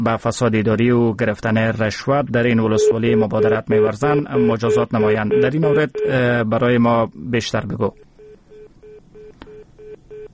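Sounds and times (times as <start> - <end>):
speech: 0.0 - 8.0
telephone tone beeps after a dropped call: 2.8 - 6.2, 8.2 - 10.3.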